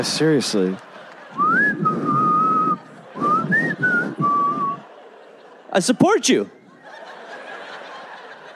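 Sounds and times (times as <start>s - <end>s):
speech: 0.0s - 1.9s, 5.8s - 6.6s
laughter: 0.0s - 8.5s
audience member at a show whistling loudly: 1.4s - 4.8s.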